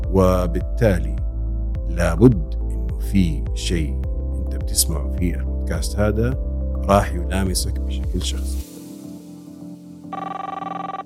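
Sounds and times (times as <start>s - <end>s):
speech: 0.1s - 1.2s, 2.0s - 4.0s, 4.7s - 8.6s
telephone ringing with an electronic trill for an incoming call: 10.1s - 11.0s.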